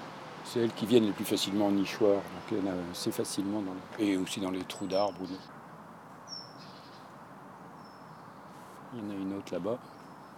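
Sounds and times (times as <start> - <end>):
outdoor hiss: 0.0 - 10.3
speech: 0.5 - 5.6, 9.0 - 10.0
great tit contact calls: 3.4 - 10.3.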